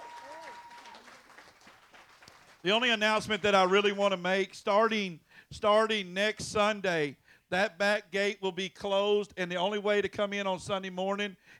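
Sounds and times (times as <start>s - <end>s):
audience applauding for actors: 0.0s - 3.6s
speech: 2.6s - 11.5s.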